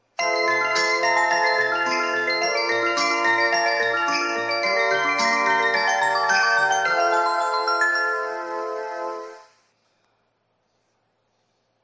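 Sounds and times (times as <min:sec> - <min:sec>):
melody: 0:00.2 - 0:09.6.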